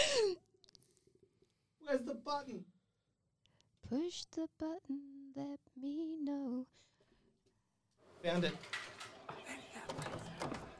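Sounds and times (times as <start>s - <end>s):
speech: 1.9s - 2.8s, 3.9s - 6.9s, 8.2s - 8.8s
water cooler gurgling: 8.4s - 10.7s.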